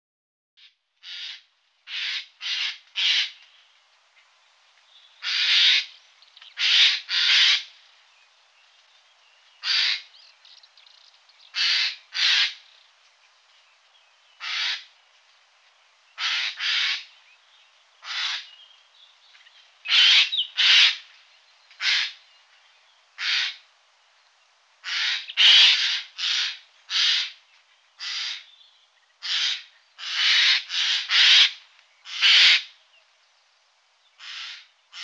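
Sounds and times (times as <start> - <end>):
Eurasian jay calling: 1.0 - 3.4, 5.2 - 6.0, 6.6 - 7.7, 9.6 - 10.1, 11.5 - 12.7, 14.4 - 14.9, 16.2 - 17.1, 18.0 - 18.6, 19.9 - 21.0, 21.8 - 22.2, 23.2 - 23.6, 24.8 - 27.4, 28.0 - 28.5, 29.2 - 32.7, 34.2 - 35.0.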